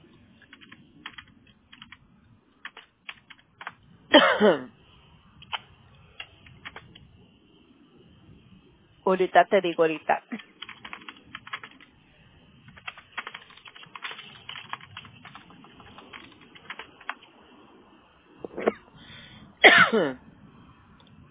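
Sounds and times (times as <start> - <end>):
keyboard typing: 0.3 - 3.8, 5.4 - 7.1, 9.9 - 12.0, 12.6 - 17.3
person coughing from asthma: 4.1 - 4.8, 18.5 - 18.8, 19.6 - 20.2
speech: 4.2 - 4.7, 9.1 - 10.4.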